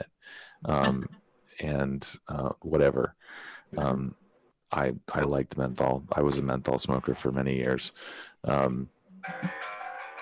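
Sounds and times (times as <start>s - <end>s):
speech: 0.3s - 9.8s
electronic phone ringtone melody: 9.2s - 10.2s.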